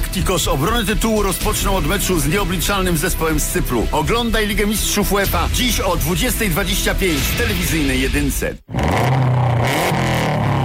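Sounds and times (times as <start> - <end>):
speech: 0.2 - 9.0
280-horsepower rally car engine revving: 8.6 - 10.6.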